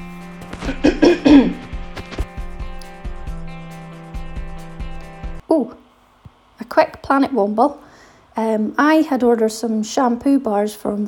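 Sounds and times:
man clearing throat: 0.6s - 1.7s
speech: 7.1s - 7.8s, 8.4s - 11.0s.

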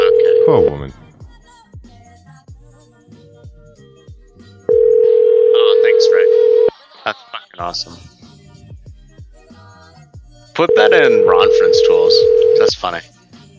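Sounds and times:
telephone dial tone after the caller hangs up: 0.0s - 0.8s, 4.7s - 6.7s, 10.7s - 12.7s
speech: 0.5s - 1.0s, 7.1s - 8.1s, 10.6s - 13.2s.

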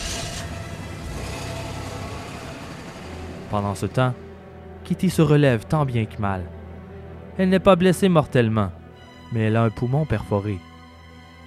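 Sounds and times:
car engine starting and reversing away: 0.0s - 4.9s
speech: 3.5s - 4.2s, 4.9s - 6.6s, 7.4s - 10.7s.

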